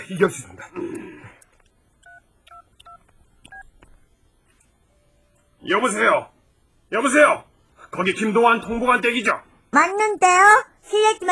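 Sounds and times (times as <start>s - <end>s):
speech: 0.1s - 1.2s, 5.6s - 6.3s, 6.9s - 11.3s
dual-tone keypad beeps from a mobile phone being dialed: 2.0s - 3.7s.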